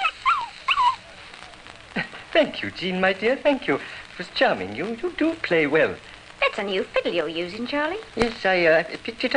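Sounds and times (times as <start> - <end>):
pups giving high-pitched whiny yips: 0.0 - 1.5
speech: 2.4 - 9.3.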